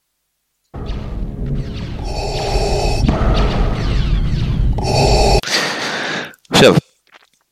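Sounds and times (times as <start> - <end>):
dense rumbling background: 0.8 - 5.4
heavy gasping breathing in a film soundtrack: 1.8 - 6.5
speech: 6.6 - 6.8.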